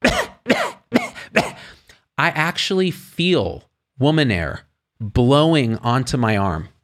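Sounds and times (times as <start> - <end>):
person imitating a woman coughing into a hand: 0.0 - 1.8
speech: 2.2 - 6.7.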